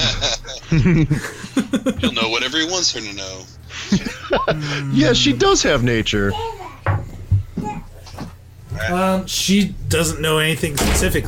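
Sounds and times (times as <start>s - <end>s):
laughter: 0.0s - 2.6s, 3.7s - 5.0s
speech: 0.7s - 6.6s, 8.8s - 11.2s
soft knocks and rattles: 6.8s - 8.4s
door slamming shut: 10.8s - 11.2s.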